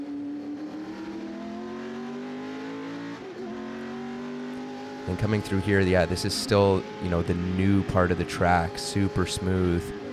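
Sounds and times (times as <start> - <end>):
race car engine droning under braking on a track: 0.0 - 10.1
speech: 5.0 - 10.0.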